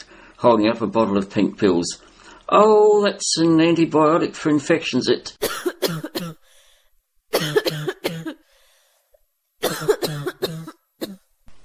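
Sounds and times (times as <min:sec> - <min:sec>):
speech: 0:00.4 - 0:06.1
harsh hacking coughs: 0:05.4 - 0:06.5, 0:07.3 - 0:08.5, 0:09.6 - 0:11.3.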